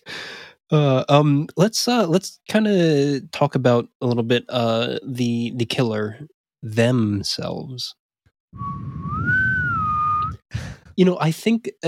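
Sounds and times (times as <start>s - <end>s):
speech: 0.7s - 9.4s, 10.5s - 11.8s
drawn-out whistled note bending up and down: 8.6s - 10.5s.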